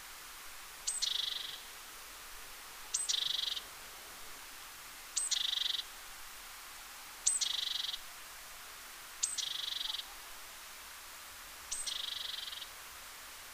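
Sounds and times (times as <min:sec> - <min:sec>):
faint steady background hiss: 0:00.0 - 0:13.5
great tit Parus major calls with buzzy churr: 0:00.9 - 0:01.7, 0:02.9 - 0:03.6, 0:05.2 - 0:05.9, 0:07.2 - 0:08.1, 0:09.2 - 0:10.2, 0:11.7 - 0:12.7.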